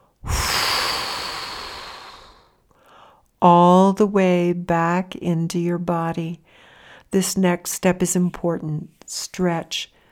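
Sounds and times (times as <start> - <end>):
big inhale and exhale through the mouth: 0.0 - 3.2
speech: 3.4 - 9.9.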